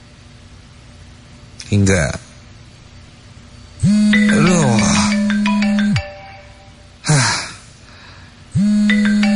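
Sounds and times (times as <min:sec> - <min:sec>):
speech: 0:01.7 - 0:02.3
steady low hum: 0:02.9 - 0:07.2
mobile phone ringing with an electronic ringtone: 0:03.8 - 0:06.8, 0:08.6 - 0:09.3.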